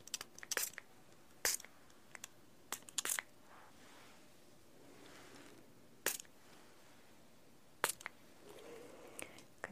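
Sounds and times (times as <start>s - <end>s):
spray bottle spritzing perfumed water: 0.1s - 0.8s, 1.4s - 1.7s, 2.7s - 3.3s, 6.0s - 6.3s, 7.8s - 8.1s.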